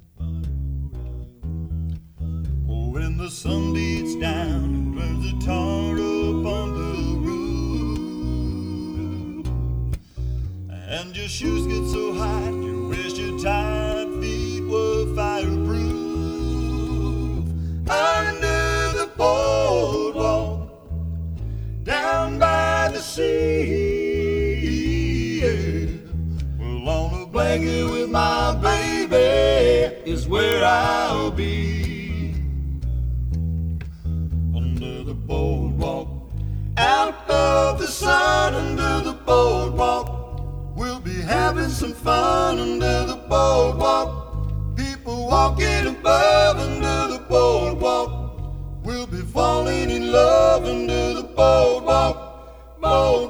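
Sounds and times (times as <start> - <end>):
bluegrass band vocal sample: 0.1 - 53.2.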